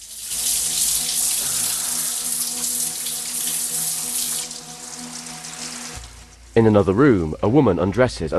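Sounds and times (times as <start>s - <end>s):
shower running water: 0.0s - 6.7s
speech: 6.6s - 8.3s.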